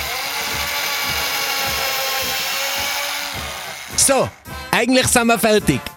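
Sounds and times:
power drill whining while driving screws: 0.0s - 4.6s
speech: 4.0s - 5.9s.

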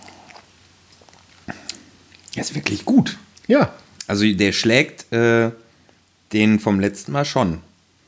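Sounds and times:
chewing a snack with a chocolate component: 0.0s - 2.4s
speech: 2.4s - 5.6s, 6.3s - 7.7s.

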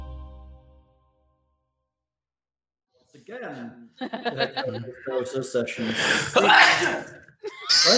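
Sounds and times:
gasps, chuckles and voices of several people: 4.2s - 7.9s
speech: 4.8s - 7.2s, 7.7s - 7.9s
loud sneeze: 6.1s - 7.9s.

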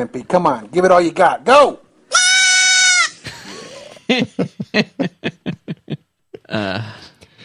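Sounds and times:
speech: 0.0s - 2.2s, 4.1s - 5.2s, 6.5s - 7.0s
baby goat bleating: 2.1s - 3.2s
laughter: 3.2s - 6.6s.

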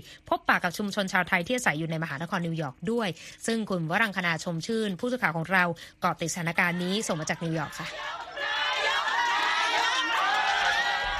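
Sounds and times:
speech: 0.0s - 8.3s
crowd cheering and shouting welcome inside a Thai Buddhist temple: 6.6s - 11.1s.

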